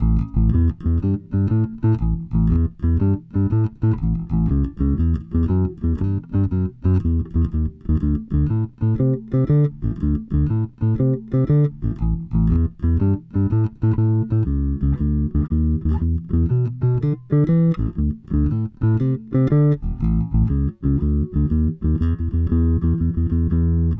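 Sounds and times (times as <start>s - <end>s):
blues bass line: 0.0s - 23.9s.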